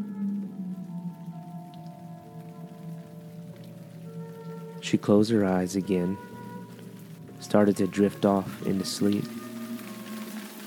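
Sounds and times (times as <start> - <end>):
low sustained hum: 0.0 - 10.4
light rain on a tin roof on a warm humid October night: 0.1 - 10.6
speech: 4.8 - 6.3, 7.5 - 9.4.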